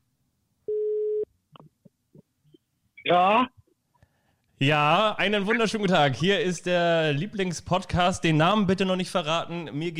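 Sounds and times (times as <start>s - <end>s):
electronic telephone ringing tone while call connects: 0.7s - 1.3s
speech: 3.1s - 3.6s, 4.6s - 9.9s.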